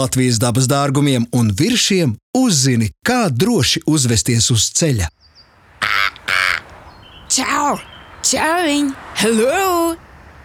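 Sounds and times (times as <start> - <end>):
speech: 0.0 - 5.3, 7.3 - 10.1
European roller giving harsh rasping calls: 5.4 - 8.8.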